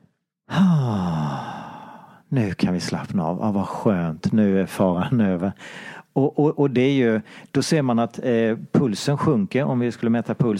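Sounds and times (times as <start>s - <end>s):
deliberately exaggerated voiced exhalation sigh: 0.5s - 2.2s
speech: 2.3s - 10.5s.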